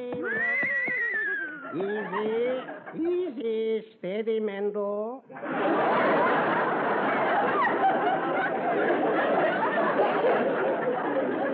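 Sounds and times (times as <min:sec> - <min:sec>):
laughter: 0:00.0 - 0:03.1, 0:05.3 - 0:11.5
horse whinnying: 0:00.2 - 0:01.8
speech: 0:01.8 - 0:11.5.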